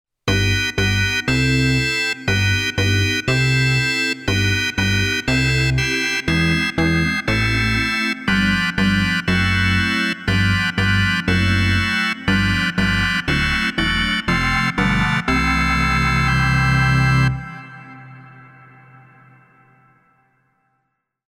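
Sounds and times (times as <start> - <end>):
augmented organ chord: 0.3 - 20.2.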